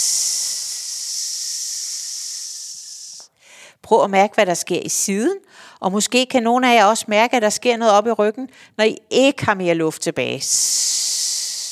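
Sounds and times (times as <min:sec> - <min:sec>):
long hissing exhalation on an s sound: 0:00.0 - 0:03.7, 0:10.5 - 0:11.7
speech: 0:03.8 - 0:10.9.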